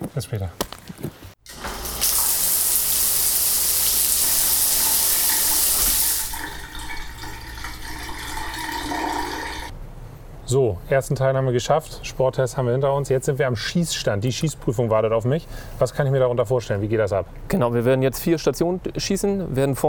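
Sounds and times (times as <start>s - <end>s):
speech: 0.2s - 0.6s, 10.5s - 19.8s
shower water running: 1.4s - 9.7s.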